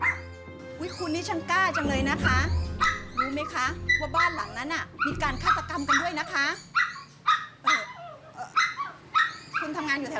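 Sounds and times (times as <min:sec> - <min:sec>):
dog barking: 0:00.0 - 0:00.2, 0:02.8 - 0:10.1
speech: 0:00.8 - 0:06.7, 0:09.7 - 0:10.1.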